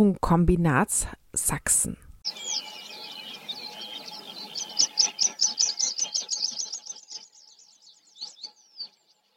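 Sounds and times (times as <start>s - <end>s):
speech: 0.0s - 2.7s
meadow pipit singing: 2.2s - 9.3s.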